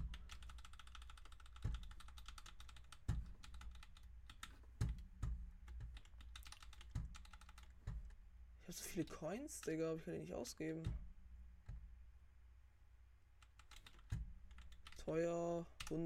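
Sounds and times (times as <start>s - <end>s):
computer keyboard keys clacking while playing a video game: 0.0s - 8.2s, 13.4s - 15.0s
heavier computer keyboard thumps: 0.0s - 8.4s, 10.8s - 12.0s, 13.8s - 15.0s
speech: 8.7s - 11.0s, 15.1s - 16.0s.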